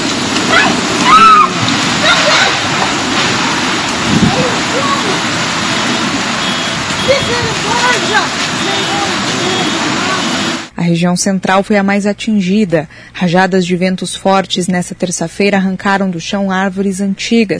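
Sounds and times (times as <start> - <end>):
brief splashes: 0.0 - 10.7
heavy rainstorm pouring in Campo Mourão: 0.0 - 10.7
speech: 10.9 - 17.5.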